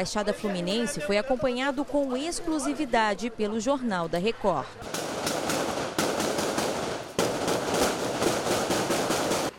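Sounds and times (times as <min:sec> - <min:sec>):
speech: 0:00.0 - 0:05.0
gunfire exchange between police and a criminal at a house in Nova Iguaçu Brazil: 0:04.8 - 0:09.5.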